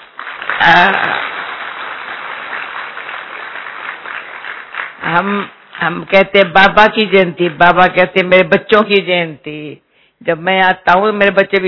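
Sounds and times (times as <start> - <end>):
audience applauding: 0.0 - 6.4
speech: 0.6 - 1.3, 5.2 - 11.6.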